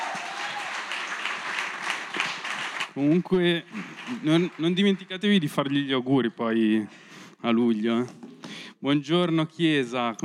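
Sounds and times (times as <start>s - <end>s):
audience applause in a church service: 0.0s - 5.2s
speech: 3.0s - 10.2s.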